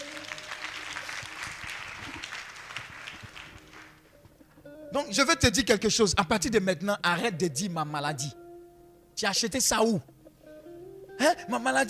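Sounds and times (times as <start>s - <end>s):
church congregation applauding during a sermon: 0.0s - 4.2s
speech: 4.9s - 8.4s, 9.2s - 10.1s, 11.2s - 11.8s.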